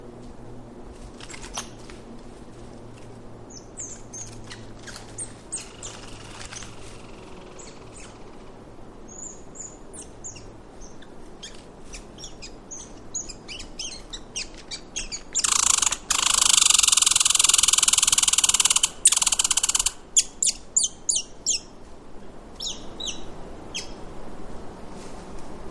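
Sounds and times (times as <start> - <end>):
American red squirrel alarm calls in Alaska: 3.5 - 21.8, 22.6 - 24.0.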